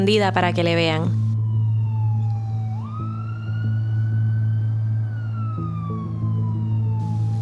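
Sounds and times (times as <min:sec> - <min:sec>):
speech: 0:00.0 - 0:01.2
ambulance siren wailing: 0:00.4 - 0:07.4.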